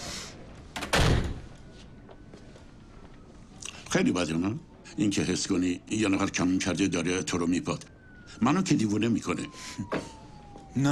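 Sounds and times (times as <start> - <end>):
door being closed: 0.8 - 1.5
speech: 3.9 - 10.2, 10.8 - 10.9.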